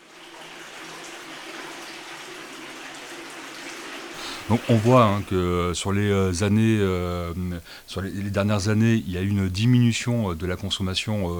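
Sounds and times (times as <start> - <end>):
water rushing through a pump fitted with a strainer filter: 0.0 - 5.6
speech: 4.5 - 11.3.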